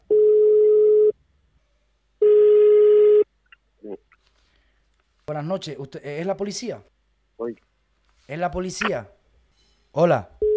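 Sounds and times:
electronic ringback tones from a phone line: 0.1 - 1.1, 2.2 - 3.2
speech: 5.3 - 7.7, 8.3 - 9.2, 9.9 - 10.4.

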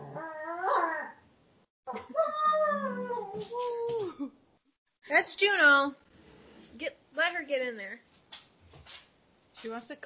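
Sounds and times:
dog whimpering and howling: 0.0 - 1.2, 1.9 - 4.2
speech: 5.2 - 6.0, 6.8 - 8.4, 9.6 - 10.0.

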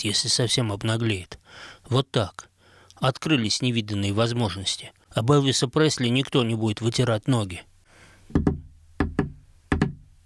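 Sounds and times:
speech: 0.0 - 7.7, 8.3 - 8.5
prisoner knocking on a wooden door: 8.3 - 10.1.

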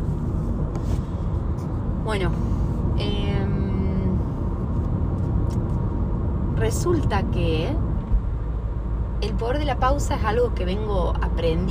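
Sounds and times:
road and engine noise inside a moving car: 0.0 - 11.6
speech: 2.1 - 3.2, 6.7 - 7.9, 9.2 - 11.6.

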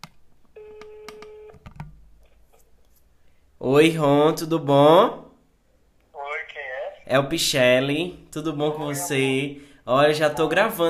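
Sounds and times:
ringback tone on an outgoing phone call: 0.6 - 1.6
speech: 3.6 - 5.2, 7.1 - 10.8.

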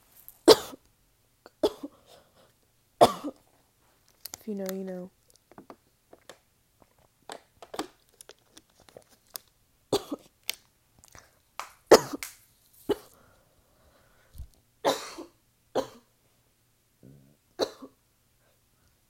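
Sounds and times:
prolonged coughing fit with gasping: 0.5 - 0.8, 1.5 - 2.2, 3.0 - 3.5, 9.9 - 10.3, 11.9 - 12.2, 12.9 - 13.1, 14.8 - 16.1, 17.6 - 18.0
speech: 4.5 - 5.2.

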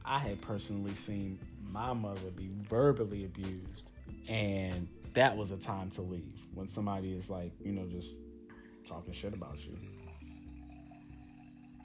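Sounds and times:
speech: 0.1 - 8.2, 8.9 - 10.0
wine being poured into a glass: 8.5 - 11.8.

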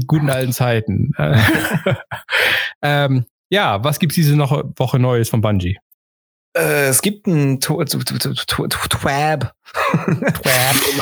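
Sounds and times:
speech: 0.0 - 5.8, 6.6 - 11.0
laughter: 1.3 - 2.3, 9.8 - 11.0
person sneezing: 10.4 - 11.0.

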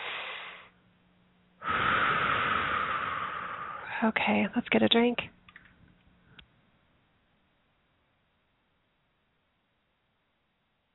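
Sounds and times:
deep breath: 0.0 - 0.7, 1.6 - 4.0
speech: 4.0 - 5.4.

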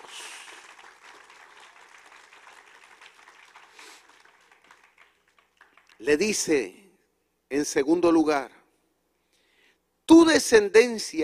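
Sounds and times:
audience applauding: 0.0 - 6.5
speech: 6.0 - 6.8, 7.5 - 8.6, 10.1 - 11.2.

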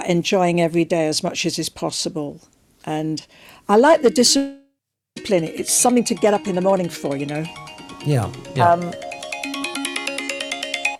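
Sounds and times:
speech: 0.0 - 4.6, 5.2 - 9.1
mobile phone ringing with electronic melody: 8.1 - 9.0.

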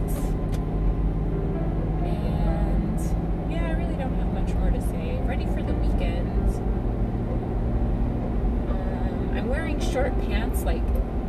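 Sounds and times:
road noise from inside a moving car: 0.0 - 11.2.

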